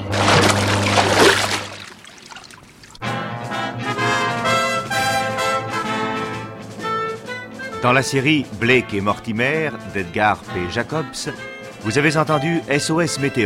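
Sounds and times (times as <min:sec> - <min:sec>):
music: 0:00.0 - 0:01.7, 0:03.0 - 0:13.4
low hum: 0:00.0 - 0:02.0
staged car skidding on a bend and plunging into water: 0:00.0 - 0:03.0
speech: 0:07.8 - 0:13.4.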